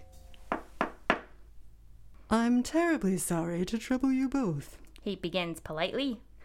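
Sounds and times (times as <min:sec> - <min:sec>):
light knocking on a wooden door: 0:00.5 - 0:01.4
speech: 0:02.3 - 0:06.3.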